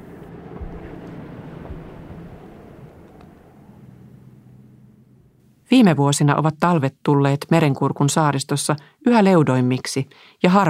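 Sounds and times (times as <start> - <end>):
distant motor engine drone: 0.0 - 5.6
soft wash of wind-like noise: 0.0 - 5.7
speech: 5.7 - 10.6.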